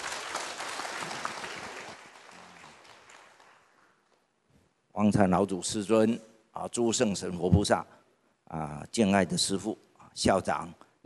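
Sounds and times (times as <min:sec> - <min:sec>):
audience applause welcoming a speaker: 0:00.0 - 0:04.0
speech: 0:05.0 - 0:11.0.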